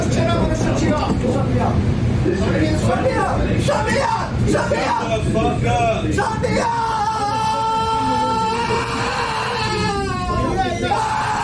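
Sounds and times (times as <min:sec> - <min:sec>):
noisy background: 0:00.0 - 0:11.4
man screaming: 0:06.6 - 0:11.4.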